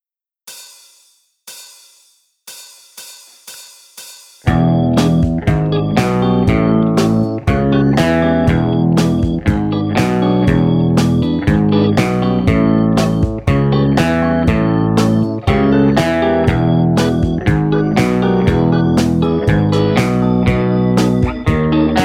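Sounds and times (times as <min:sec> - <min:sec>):
fast guitar riffs: 0:04.5 - 0:22.0.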